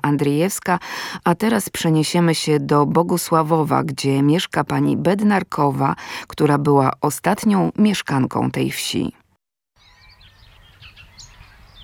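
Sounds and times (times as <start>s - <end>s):
speech: 0.1s - 9.2s
birds singing outdoors: 9.8s - 11.8s.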